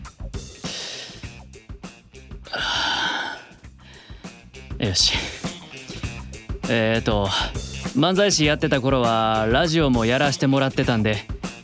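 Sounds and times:
deep breath taken before speaking into a studio microphone: 0:00.5 - 0:01.4, 0:02.5 - 0:04.5, 0:05.1 - 0:06.2, 0:07.3 - 0:07.8
speech: 0:04.8 - 0:05.4, 0:06.7 - 0:11.3.

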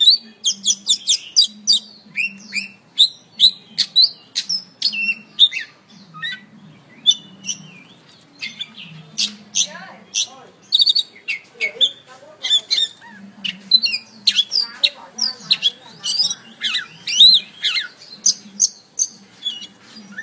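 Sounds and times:
Oriental magpie-robin singing: 0:00.0 - 0:20.2.

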